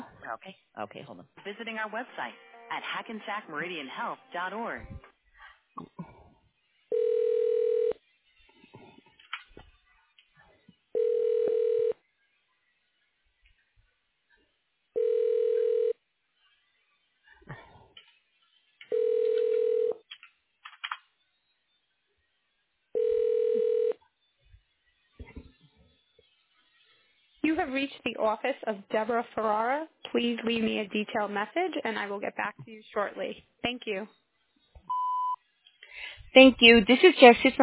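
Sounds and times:
speech: 0.3s - 5.1s, 5.8s - 6.1s, 27.7s - 34.2s, 36.4s - 37.6s
telephone ringback as a call is transferred: 6.9s - 8.0s, 11.0s - 12.0s, 15.0s - 16.0s, 18.9s - 20.0s, 23.0s - 24.0s.

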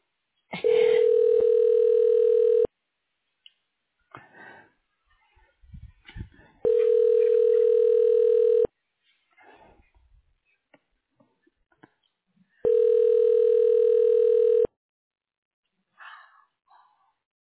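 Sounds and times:
telephone ringback tone during call transfer: 0.9s - 2.7s, 6.6s - 8.7s, 12.6s - 14.7s.

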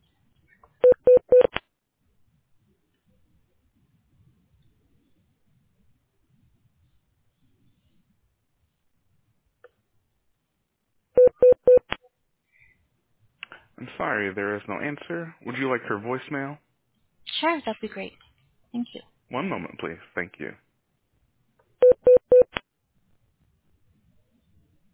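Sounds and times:
telephone keypad dialing tones while a call is transferred: 0.8s - 1.6s, 11.2s - 11.9s, 21.8s - 22.6s
speech: 13.8s - 16.6s, 17.4s - 20.6s.

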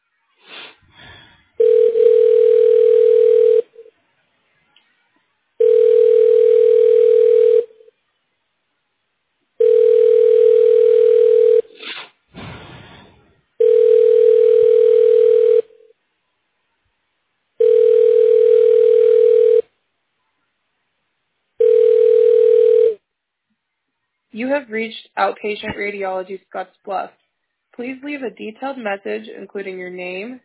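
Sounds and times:
telephone ringback tone during call transfer: 1.6s - 3.8s, 5.6s - 7.8s, 9.6s - 11.7s, 13.6s - 15.8s, 17.6s - 19.7s, 21.6s - 23.0s
speech: 24.6s - 27.2s, 27.8s - 30.4s.

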